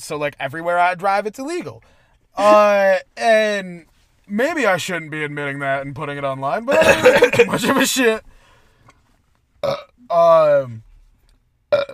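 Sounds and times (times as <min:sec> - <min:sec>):
speech: 0:00.0 - 0:08.3, 0:09.6 - 0:10.9, 0:11.7 - 0:11.9
short abrupt vocal bursts: 0:02.4 - 0:02.8
loud throaty burp: 0:09.6 - 0:10.2, 0:11.7 - 0:11.9.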